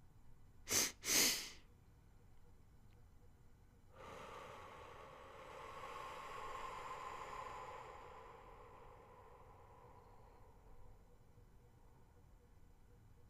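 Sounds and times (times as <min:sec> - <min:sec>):
long steady exhale: 0:00.7 - 0:01.6, 0:03.9 - 0:11.3
short deep breaths drawn sharply through the nose: 0:00.7 - 0:01.6, 0:03.9 - 0:11.3.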